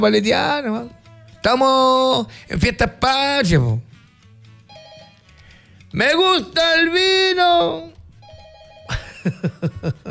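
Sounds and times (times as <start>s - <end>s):
speech: 0.0s - 3.9s, 5.9s - 8.0s, 8.9s - 10.0s
telephone bell ringing: 4.7s - 5.4s, 8.2s - 9.4s
laughter: 8.9s - 10.0s.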